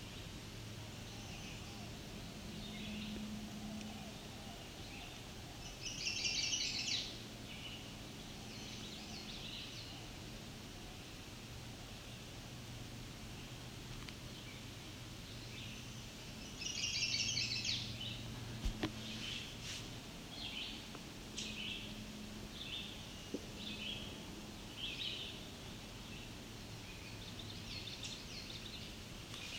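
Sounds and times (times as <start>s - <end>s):
steady hiss of outdoor noise: 0.0s - 29.5s
male chestnut-sided warbler singing: 0.9s - 10.2s, 14.3s - 18.3s, 20.3s - 29.5s.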